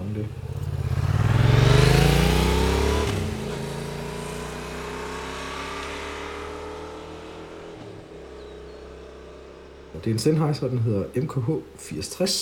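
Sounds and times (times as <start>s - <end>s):
motorcycle roaring past: 0.0s - 10.8s
low motorcycle engine rumble: 0.0s - 12.4s
speech: 10.0s - 12.4s.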